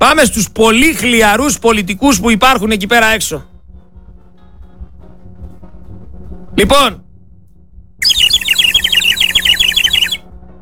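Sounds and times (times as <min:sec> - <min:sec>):
speech: 0:00.1 - 0:03.6, 0:06.6 - 0:07.0
bird-call whistle blown in a warbling trill: 0:08.0 - 0:10.2.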